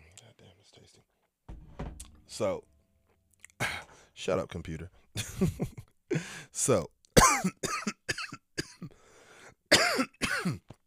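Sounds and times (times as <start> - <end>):
speech: 2.3 - 2.7, 4.2 - 7.7
person coughing harshly and raspily: 7.2 - 8.9, 9.7 - 10.7.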